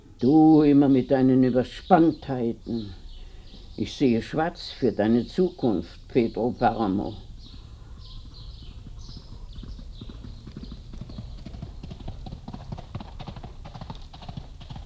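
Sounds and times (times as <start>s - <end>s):
speech: 0.2s - 3.0s, 3.8s - 7.3s
hooves of a galloping horse heading toward a ranch: 6.6s - 14.8s.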